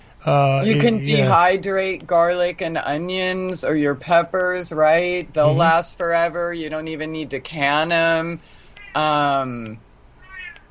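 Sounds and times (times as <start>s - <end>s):
speech: 0.2s - 9.8s
cat meowing at a door: 10.2s - 10.7s.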